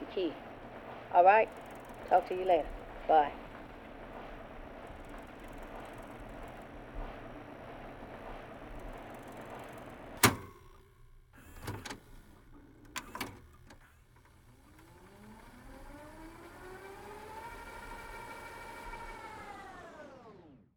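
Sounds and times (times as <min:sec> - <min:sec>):
cassette tape whirring as it rewinds or fast-forwards: 0:00.0 - 0:20.7
speech: 0:00.2 - 0:00.5, 0:01.1 - 0:03.4
mechanical button clicks: 0:09.3 - 0:10.8.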